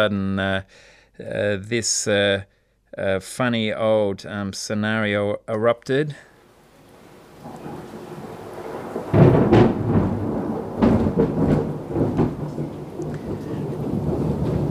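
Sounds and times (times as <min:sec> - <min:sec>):
speech: 0:00.0 - 0:06.3, 0:07.4 - 0:08.0, 0:11.2 - 0:11.5
rain falling: 0:06.4 - 0:14.6
thunder booming: 0:06.8 - 0:14.6.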